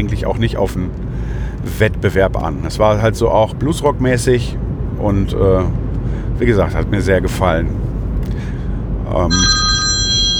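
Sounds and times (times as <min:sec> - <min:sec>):
speech: 0:00.0 - 0:08.4, 0:09.1 - 0:09.6
telephone ringing with a bright steady electronic tone: 0:09.3 - 0:10.3.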